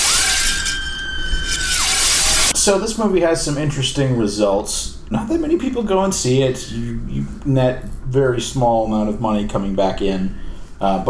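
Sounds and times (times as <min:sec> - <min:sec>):
shattering glass: 0:00.0 - 0:02.5
steady high-pitched scream-like wail: 0:00.0 - 0:02.5
speech: 0:02.6 - 0:11.0.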